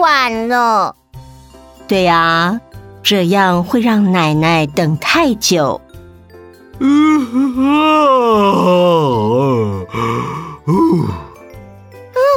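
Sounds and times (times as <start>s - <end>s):
speech: 0.0s - 1.0s, 1.9s - 5.8s, 6.8s - 11.2s
man yawning loudly: 6.8s - 11.4s.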